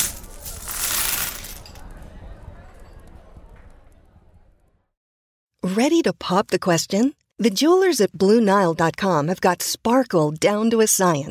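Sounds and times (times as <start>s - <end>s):
coins tossed and scattering across a table: 0.0s - 1.8s
speech: 5.7s - 11.2s.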